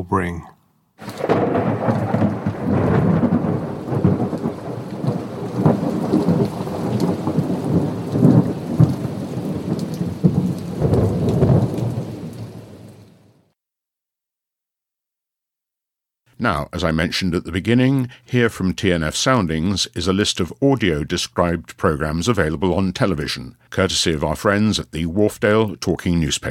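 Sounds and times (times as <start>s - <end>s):
speech: 0.0s - 1.6s, 16.4s - 26.4s
deep rolling thunder: 1.0s - 13.1s
heavy rain: 1.0s - 13.5s.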